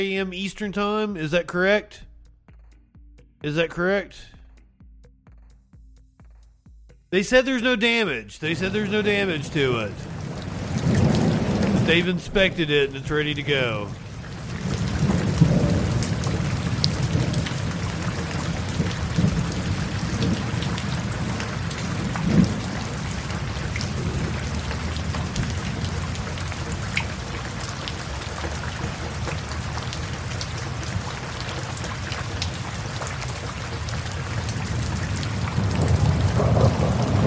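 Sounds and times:
speech: 0:00.0 - 0:02.1, 0:03.4 - 0:04.4, 0:07.1 - 0:10.2, 0:11.9 - 0:14.0
deep thunder rumbling: 0:08.4 - 0:37.2
heavy rain: 0:08.4 - 0:37.2.

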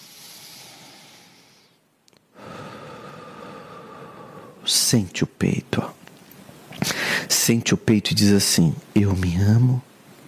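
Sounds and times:
deep breath drawn in slowly as a calming exercise: 0:00.0 - 0:04.6, 0:06.8 - 0:07.3
faint clicks: 0:02.0 - 0:02.3
speech: 0:04.7 - 0:06.0, 0:07.4 - 0:09.9.

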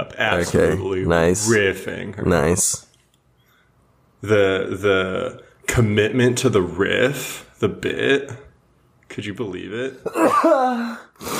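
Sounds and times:
speech: 0:00.1 - 0:02.8, 0:04.2 - 0:08.4, 0:09.1 - 0:11.3
person sneezing: 0:10.1 - 0:11.3.

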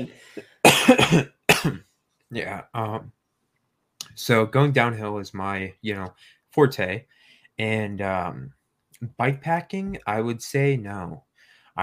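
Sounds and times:
person clearing throat with something stuck in it: 0:00.0 - 0:01.8
person coughing with something stuck in throat: 0:00.0 - 0:01.8
speech: 0:00.0 - 0:03.2, 0:04.2 - 0:11.8.

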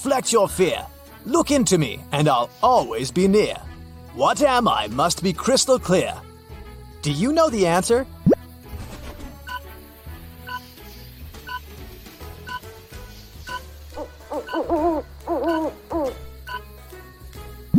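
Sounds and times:
speech: 0:00.0 - 0:06.3, 0:07.0 - 0:08.2
owl hooting: 0:13.5 - 0:16.4.

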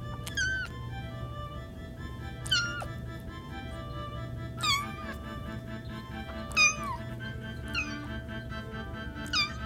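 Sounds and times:
low steady hum: 0:00.0 - 0:09.6
tiny kitten mewing: 0:00.2 - 0:00.8, 0:02.4 - 0:03.0, 0:04.6 - 0:05.2, 0:06.4 - 0:08.2, 0:09.2 - 0:09.6.

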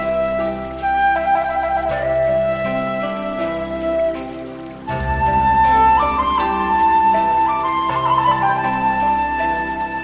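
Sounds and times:
Chinese-inspired instrumental with lilting melody, held chords and soft bass: 0:00.0 - 0:10.0.

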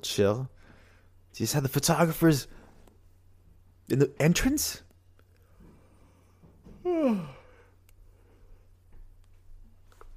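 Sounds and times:
speech: 0:00.0 - 0:00.6, 0:01.3 - 0:02.6, 0:03.9 - 0:04.8, 0:06.8 - 0:07.4
low steady hum: 0:00.0 - 0:10.1
person yawning: 0:06.7 - 0:07.8.

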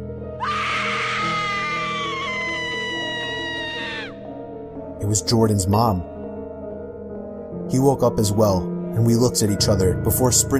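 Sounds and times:
woman screaming in horror: 0:00.4 - 0:04.2
speech: 0:05.0 - 0:06.1, 0:07.7 - 0:10.5.

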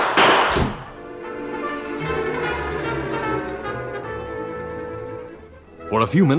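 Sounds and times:
loud gunshot: 0:00.0 - 0:00.9
steady low musical drone: 0:00.8 - 0:06.3
speech: 0:05.9 - 0:06.3.

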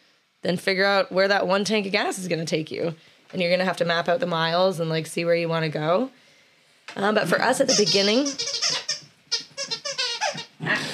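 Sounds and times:
speech: 0:00.4 - 0:06.2, 0:06.9 - 0:08.8, 0:10.6 - 0:10.9
dog squeaking a squeaky toy: 0:07.6 - 0:10.6.

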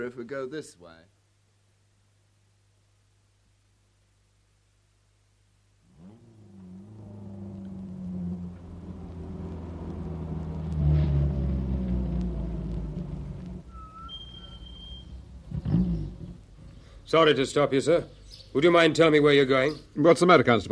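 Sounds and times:
speech: 0:00.0 - 0:01.2, 0:17.1 - 0:20.7
car engine turning over, revving and rumbling as the car drives off: 0:05.9 - 0:13.9, 0:15.2 - 0:16.4.

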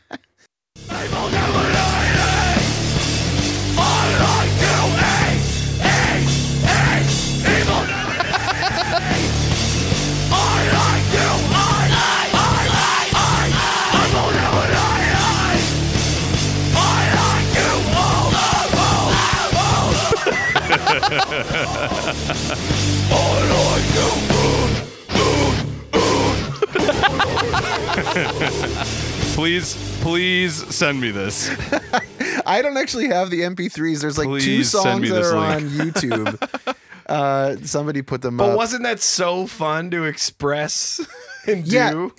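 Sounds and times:
loud dense heavy-rock instrumentation: 0:00.8 - 0:32.3
harsh screamed vocals in a nu-metal song: 0:00.9 - 0:02.8, 0:03.8 - 0:09.4, 0:10.3 - 0:15.7, 0:16.8 - 0:20.7, 0:23.1 - 0:28.8
laughter: 0:07.5 - 0:09.4, 0:19.7 - 0:23.8, 0:26.3 - 0:29.3, 0:31.3 - 0:33.2, 0:33.8 - 0:37.0, 0:41.0 - 0:42.0
speech: 0:29.6 - 0:42.1.

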